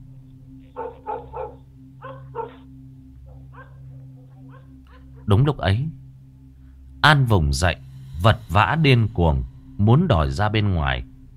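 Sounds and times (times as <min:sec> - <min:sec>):
steady low hum: 0:00.0 - 0:11.3
black dog barking outside by a gate: 0:00.7 - 0:02.7, 0:03.3 - 0:05.2
speech: 0:05.3 - 0:06.0, 0:07.0 - 0:11.1.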